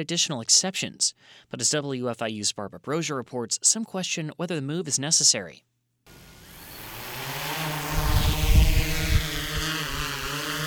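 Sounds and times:
speech: 0.0 - 6.2
sheriff's department drone propellers buzzing: 6.1 - 10.6.

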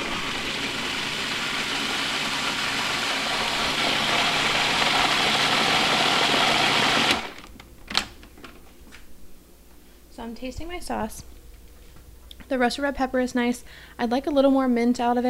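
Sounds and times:
blender pureeing harissa sauce with roasted red pepper, tomato paste, mint and orange: 0.0 - 7.5
speech: 10.4 - 11.4, 12.5 - 15.2.

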